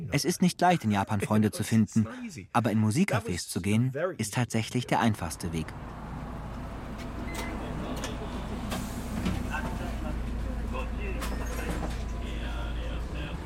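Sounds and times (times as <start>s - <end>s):
speech: 0.1s - 6.0s
steady low engine drone inside a moving city bus: 5.2s - 13.4s
faint indistinct voices: 7.4s - 13.4s.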